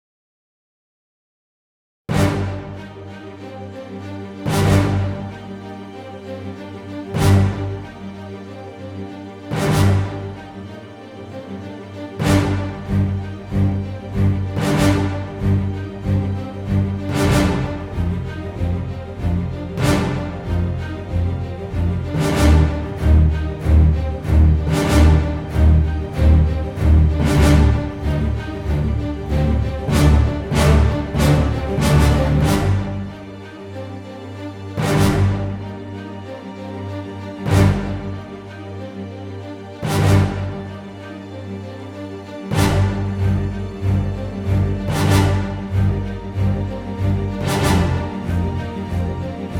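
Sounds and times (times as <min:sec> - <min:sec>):
brass: 0:02.1 - 0:49.5
strings: 0:02.1 - 0:49.5.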